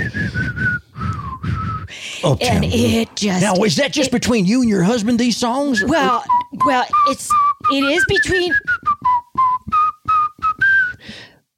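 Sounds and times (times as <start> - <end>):
person whistling the melody of a pop song: 0.0 - 1.9, 5.8 - 11.4
speech: 2.2 - 8.7.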